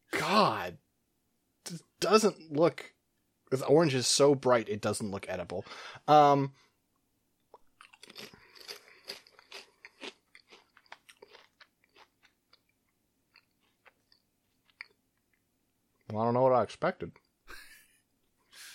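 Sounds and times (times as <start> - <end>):
speech: 0.3 - 0.8, 1.7 - 6.6, 8.2 - 8.4, 16.1 - 17.2
crunching on a cheese-flavored Japanese potato chip: 7.7 - 15.0.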